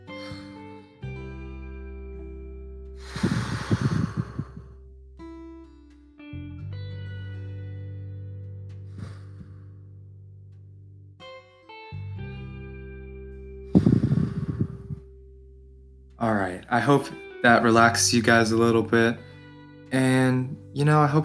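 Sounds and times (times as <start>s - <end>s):
soft sustained musical tones: 0.0s - 21.2s
people breathing deeply together: 0.1s - 0.6s, 3.0s - 4.8s, 13.7s - 15.0s
speech: 16.2s - 19.3s, 19.9s - 21.2s.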